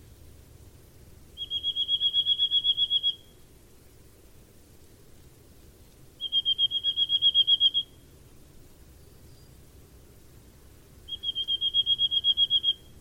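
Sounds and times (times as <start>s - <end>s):
bird trilling: 1.4s - 3.3s, 6.2s - 8.0s, 11.1s - 12.9s.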